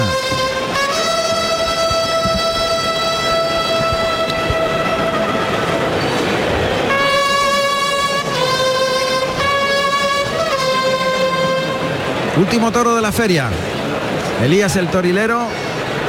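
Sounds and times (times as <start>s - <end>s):
bullring bugle and clarion calls: 0.0s - 12.4s
noisy rumbling background in a bullring: 0.0s - 16.0s
speech: 12.4s - 13.7s, 14.4s - 15.7s.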